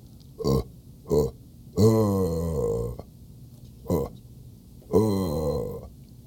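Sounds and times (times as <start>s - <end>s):
person imitating a deer buck grunt call: 0.4s - 3.1s, 3.8s - 4.2s, 4.9s - 5.9s.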